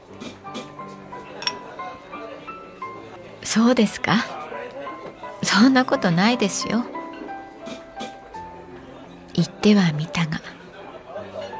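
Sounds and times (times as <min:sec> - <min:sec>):
busy murmur of voices: 0:00.0 - 0:11.5
beer glasses clinking in a toast: 0:01.4 - 0:01.8
speech: 0:03.4 - 0:04.4, 0:05.5 - 0:06.9, 0:09.4 - 0:10.5.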